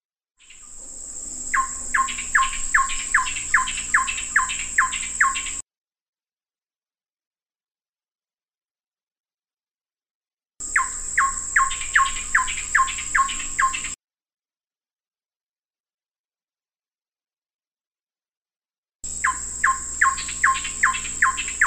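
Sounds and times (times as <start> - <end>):
Kalimantan ciungair coreng bird calling and singing: 0.4 - 5.6, 10.6 - 14.0, 19.1 - 21.6.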